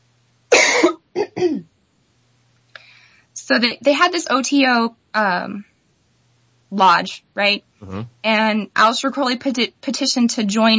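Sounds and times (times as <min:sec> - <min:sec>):
person coughing with something caught in the throat: 0:00.5 - 0:01.6, 0:07.8 - 0:08.1
person clearing throat: 0:00.5 - 0:01.7, 0:07.8 - 0:08.1
speech: 0:03.5 - 0:05.7, 0:06.7 - 0:10.7.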